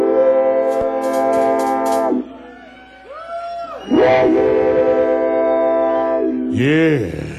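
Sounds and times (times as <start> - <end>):
loud train whistle blasts: 0.0 - 2.5, 3.8 - 6.5
speech: 6.6 - 7.3.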